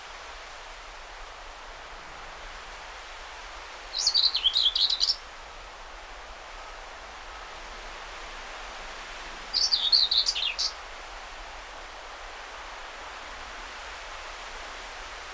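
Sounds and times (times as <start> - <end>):
soft steady hiss: 0.0 - 15.3
common whitethroat singing hurried scratchy warbles: 9.6 - 10.7.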